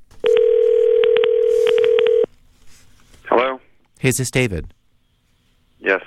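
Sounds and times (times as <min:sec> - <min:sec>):
telephone dial tone: 0:00.2 - 0:02.3
speech: 0:04.0 - 0:04.8, 0:05.9 - 0:06.0.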